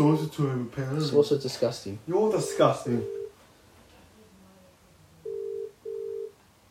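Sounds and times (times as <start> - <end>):
speech: 0.0 - 3.2
faint hum: 0.0 - 6.6
phone's outgoing ringing tone: 2.4 - 3.3, 5.3 - 6.4.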